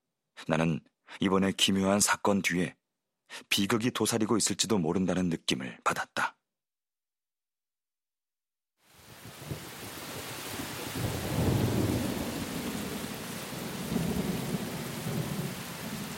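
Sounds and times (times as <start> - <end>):
speech: 0.4 - 6.4
steady dense rain falling at night: 8.8 - 16.1.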